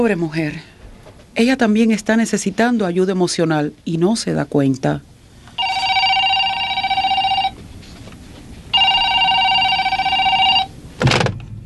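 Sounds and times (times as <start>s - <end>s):
speech: 0.0s - 0.7s, 1.4s - 5.1s
telephone ringing in electronic bursts: 5.6s - 7.6s, 8.7s - 10.8s.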